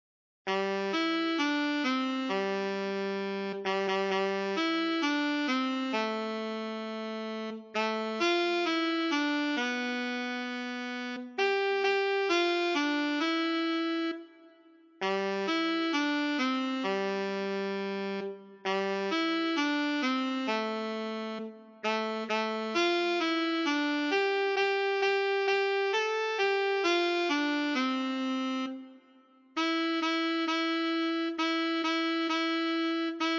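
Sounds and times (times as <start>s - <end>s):
solo alto saxophone: 0.5s - 33.3s.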